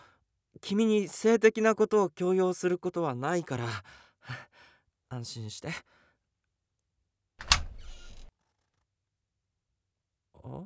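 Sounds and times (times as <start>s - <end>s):
speech: 0.6s - 4.5s, 5.1s - 6.0s, 10.4s - 10.6s
door opening: 7.4s - 8.3s.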